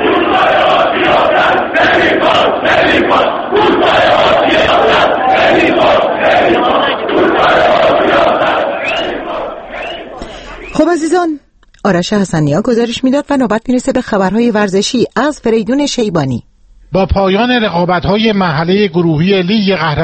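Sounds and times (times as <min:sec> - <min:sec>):
large stadium crowd chanting political slogans in unison: 0:00.0 - 0:10.7
speech: 0:10.9 - 0:20.0.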